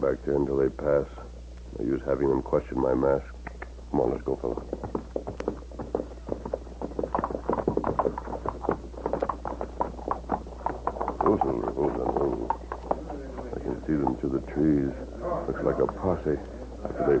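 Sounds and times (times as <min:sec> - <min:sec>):
speech: 0:00.0 - 0:05.3, 0:14.3 - 0:17.1
low steady hum: 0:00.0 - 0:17.1
several horses' hooves clip-clopping: 0:04.0 - 0:17.1.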